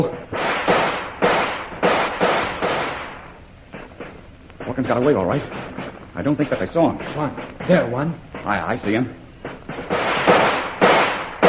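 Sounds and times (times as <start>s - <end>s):
speech: 0.0s - 0.3s, 4.8s - 9.2s
gunshots fired in a defensive fight: 0.0s - 11.4s.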